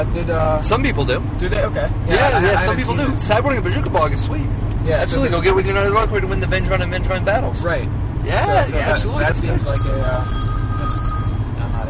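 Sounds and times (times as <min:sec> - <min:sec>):
speech: 0:00.0 - 0:10.4
telephone ringing with a continuous electronic trill: 0:09.6 - 0:11.8.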